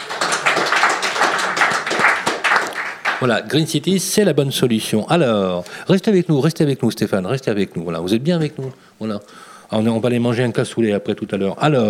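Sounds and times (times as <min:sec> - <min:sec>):
crowd applauding: 0:00.0 - 0:03.4
speech: 0:03.2 - 0:11.8.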